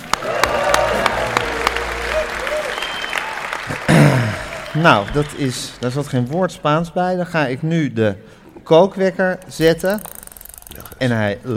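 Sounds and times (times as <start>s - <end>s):
crowd applause: 0.0s - 6.0s
speech: 4.8s - 10.1s, 11.0s - 11.5s.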